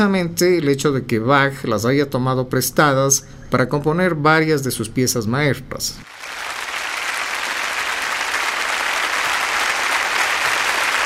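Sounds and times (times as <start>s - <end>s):
speech: 0.0s - 6.5s
audience applause in a concert hall as the conductor walks onstage: 6.1s - 11.0s.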